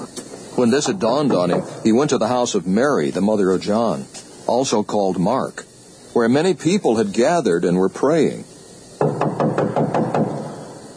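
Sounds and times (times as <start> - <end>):
speech: 0.6 - 8.5
knocking on a house's outer entrance door: 9.0 - 10.6.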